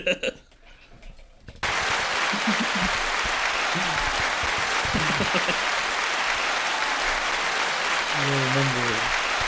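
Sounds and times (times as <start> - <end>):
crowd applauding: 1.6 - 9.4
laughter: 1.6 - 9.4.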